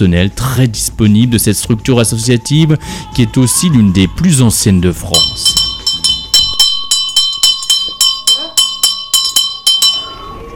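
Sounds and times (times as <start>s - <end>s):
speech: 0.0s - 5.7s
assembly handbell ringing at a care center: 5.2s - 10.4s.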